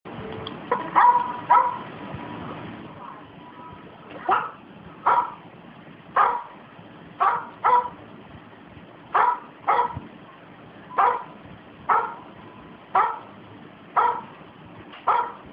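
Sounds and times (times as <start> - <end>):
dog: 0.7 - 1.8, 4.2 - 5.4, 6.2 - 6.5, 7.2 - 8.0, 9.2 - 10.0, 11.0 - 11.3, 11.9 - 12.2, 13.0 - 13.3, 14.0 - 14.3, 15.0 - 15.4.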